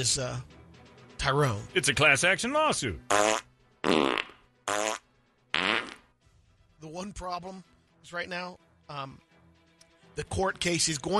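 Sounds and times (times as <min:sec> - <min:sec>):
speech: 0:00.0 - 0:00.6, 0:01.2 - 0:04.8, 0:07.0 - 0:09.3, 0:10.2 - 0:11.1
farting: 0:03.1 - 0:06.1.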